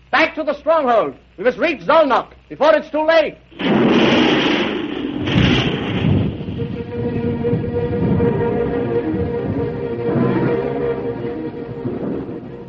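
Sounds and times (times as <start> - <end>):
speech: 0.2 - 4.4
loud deep rolling thunder in a thunderstorm: 3.6 - 12.6.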